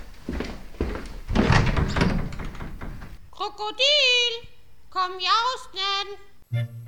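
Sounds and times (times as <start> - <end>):
scuffing: 0.0 - 1.5
door creaking and rattling as it swings open: 0.0 - 3.3
dull thuds and knocks on a door: 1.3 - 3.2
speech: 3.4 - 6.6.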